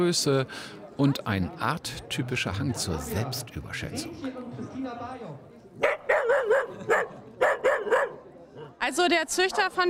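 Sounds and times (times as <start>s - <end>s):
speech: 0.0s - 7.2s, 8.8s - 9.8s
dachshund barking: 5.8s - 8.8s.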